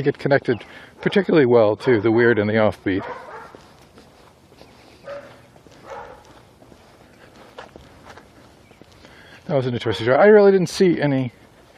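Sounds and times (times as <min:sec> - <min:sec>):
speech: 0:00.0 - 0:03.3, 0:09.5 - 0:11.4
dog barking: 0:01.0 - 0:02.2, 0:03.0 - 0:03.6, 0:05.0 - 0:06.4, 0:09.8 - 0:10.2.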